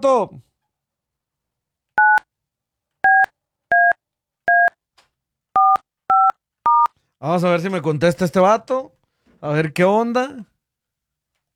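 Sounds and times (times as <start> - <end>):
speech: 0.0 - 0.5, 7.2 - 10.5
DTMF touch-tone beeps as a telephone number is dialed: 2.0 - 2.2, 3.1 - 4.8, 5.6 - 6.9.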